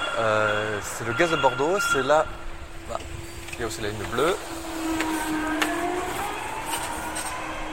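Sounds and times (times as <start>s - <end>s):
speech: 0.2s - 4.6s
small electric shuttle bus motor whine and rolling hum in central Bordeaux: 2.6s - 7.7s.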